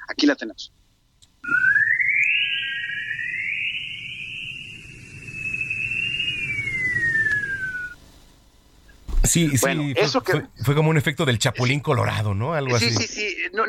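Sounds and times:
low steady rumbling hiss in sonified Earth radio recording: 0.0 - 13.6
speech: 0.2 - 0.8, 9.2 - 13.6
sonified radio emissions of Earth recorded from space by Voyager spacecraft: 1.4 - 8.0.

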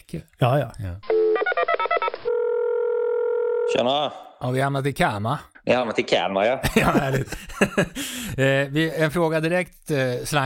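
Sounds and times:
speech: 0.1 - 1.1, 3.7 - 10.4
steady continuous phone tone: 1.0 - 3.8
laughter: 6.6 - 8.0.

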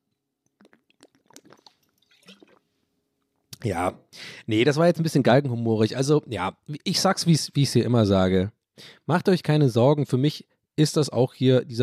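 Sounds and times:
person sipping water: 0.5 - 2.7
speech: 3.6 - 11.8.

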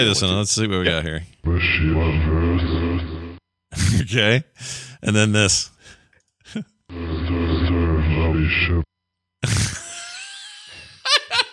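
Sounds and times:
speech: 0.0 - 3.1, 3.7 - 5.7, 6.5 - 6.7, 8.5 - 9.6
deep slowed-down voice recording played backwards with echo: 1.5 - 3.4, 6.9 - 8.8.

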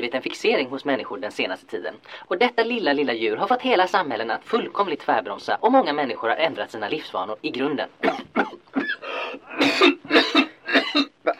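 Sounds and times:
speech: 0.0 - 11.3
harsh raspy coughing: 8.0 - 11.3.

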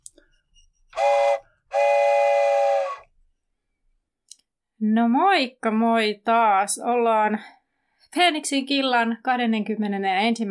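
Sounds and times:
steam train whistle: 1.0 - 3.1
speech: 4.9 - 10.5.

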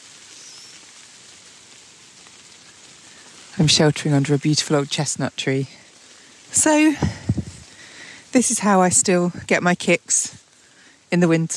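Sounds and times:
heavy rain pouring: 0.0 - 11.5
speech: 3.6 - 5.8, 6.5 - 7.4, 8.4 - 10.3, 11.1 - 11.5.

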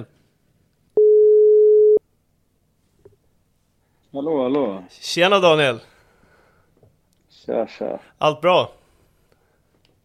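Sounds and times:
telephone ringback tone while placing a call: 1.0 - 2.0
speech: 4.2 - 5.9, 7.4 - 8.8.

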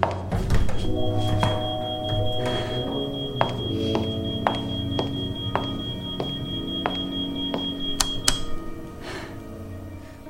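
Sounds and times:
high heels walking: 0.0 - 8.1
door opening: 0.3 - 8.8
low droning tones: 0.3 - 10.2
beeping: 0.4 - 10.2
continuous high-pitched alarm tone: 0.5 - 8.9.

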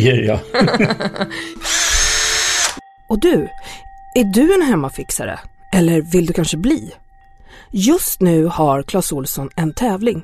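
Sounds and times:
speech: 0.0 - 1.9, 3.1 - 7.0, 7.6 - 10.2
laughter: 0.4 - 1.4
electric power drill running: 1.6 - 2.8.

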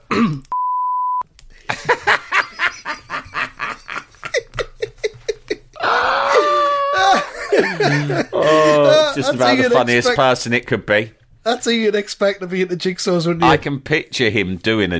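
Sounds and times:
censor bleep tone over a spoken name: 0.5 - 1.2
several people laughing in loud rhythmic bursts: 1.6 - 10.2
speech: 7.8 - 14.9.

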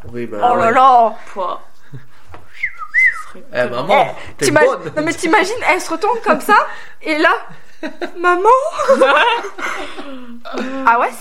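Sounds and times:
speech: 0.1 - 2.1, 3.3 - 11.1
person whistling a two-note call: 2.5 - 3.4
laughter: 7.5 - 10.8.

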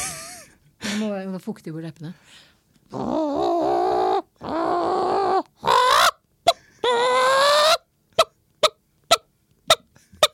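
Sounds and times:
speech: 1.0 - 3.8
person imitating a clucking hen: 2.9 - 6.2, 6.8 - 8.3.

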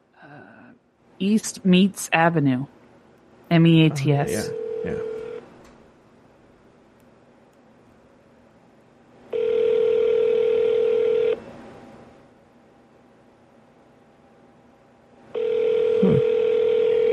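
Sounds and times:
speech: 1.2 - 2.8, 3.5 - 5.1
telephone ringback tone down the line: 4.3 - 5.4, 9.3 - 11.4, 15.4 - 17.1.

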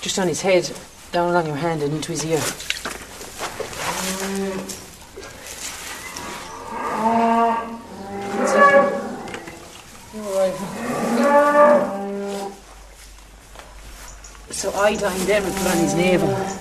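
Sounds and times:
speech: 0.0 - 2.8, 14.9 - 16.5
cow mooing over her newborn calf: 3.9 - 4.8, 6.0 - 9.6, 10.4 - 12.6, 15.3 - 16.5.

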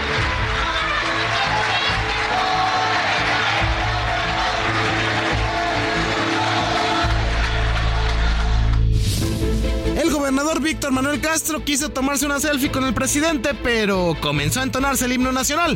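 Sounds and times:
crowd applauding at a convention center: 0.0 - 9.2
speech: 10.4 - 15.7.

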